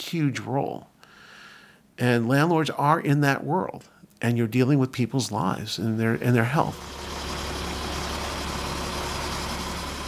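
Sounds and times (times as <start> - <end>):
speech: 0.0 - 0.9, 2.0 - 7.0
moving truck engine idling: 6.7 - 10.0.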